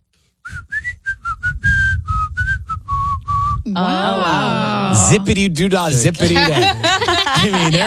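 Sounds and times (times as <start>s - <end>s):
person whistling a short bouncy tune: 0.4s - 3.7s
laughter: 3.7s - 5.2s, 6.1s - 7.8s
speech: 3.7s - 7.8s.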